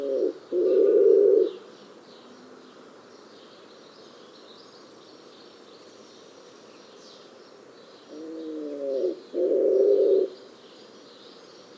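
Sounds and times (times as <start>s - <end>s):
bird cooing in a low register: 0.0s - 1.6s, 8.1s - 10.4s.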